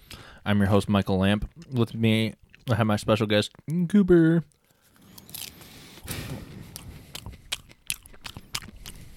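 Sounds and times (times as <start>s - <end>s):
speech: 0.4s - 4.6s
wet chewing of a mouthful of popcorn: 4.5s - 9.1s.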